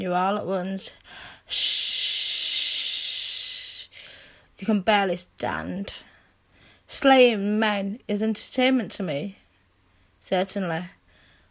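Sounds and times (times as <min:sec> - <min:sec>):
speech: 0:00.0 - 0:01.9, 0:04.6 - 0:06.1, 0:06.9 - 0:09.4, 0:10.3 - 0:11.0
person's voice imitating a snake's hiss: 0:01.5 - 0:04.2.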